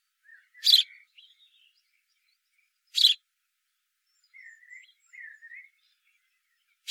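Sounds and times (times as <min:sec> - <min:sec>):
house sparrow chirps: 0:00.1 - 0:03.2, 0:04.0 - 0:06.9.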